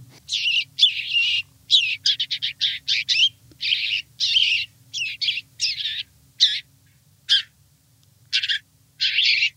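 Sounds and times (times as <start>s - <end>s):
house sparrow giving distress calls while caught by a sparrowhawk: 0.3s - 7.6s, 8.3s - 9.5s.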